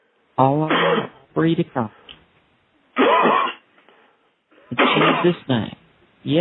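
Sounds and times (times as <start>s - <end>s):
speech: 0.4s - 2.0s, 4.7s - 6.3s
person coughing and clearing throat during a prayer: 0.7s - 1.2s, 3.0s - 3.7s, 4.7s - 5.5s.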